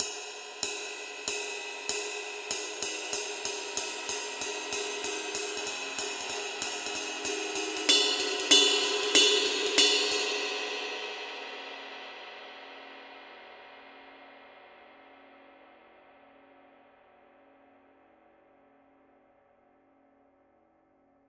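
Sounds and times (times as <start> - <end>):
Paiste Twenty Master Deep Signature Groove ride cymbal: 0.0 - 11.9.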